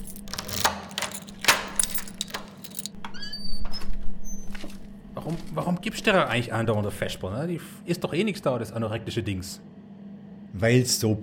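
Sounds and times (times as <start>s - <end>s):
keys jangling and clinking: 0.0s - 3.0s
low hum: 0.0s - 11.2s
speech: 5.3s - 9.7s, 10.6s - 11.2s.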